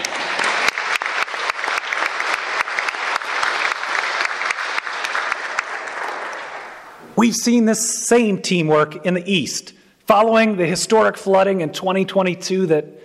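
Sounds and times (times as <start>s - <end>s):
applause from a sizable audience: 0.0s - 7.0s
speech: 7.2s - 13.0s.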